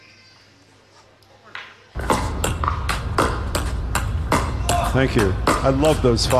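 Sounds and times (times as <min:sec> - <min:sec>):
noise: 0:00.0 - 0:06.3
pickleball paddles thwacking a pickleball: 0:02.0 - 0:06.3
speech: 0:04.9 - 0:06.3.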